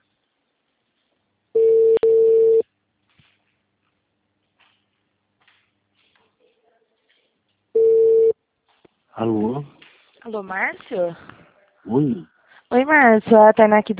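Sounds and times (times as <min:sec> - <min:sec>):
telephone ringback tone on an outgoing call: 0:01.6 - 0:02.6, 0:07.8 - 0:08.4
speech: 0:09.2 - 0:13.9.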